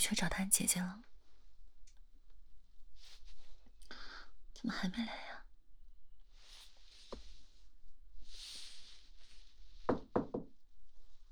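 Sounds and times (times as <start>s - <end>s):
speech: 0.0s - 1.1s, 4.6s - 5.4s
sharp knocks on a bedroom door: 9.9s - 10.5s.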